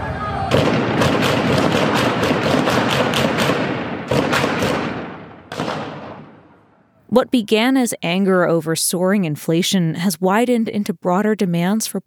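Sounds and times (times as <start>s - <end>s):
constant roar of crowd noise in a street: 0.0s - 3.4s
gunfire in city streets: 0.5s - 6.6s
speech: 7.2s - 12.0s.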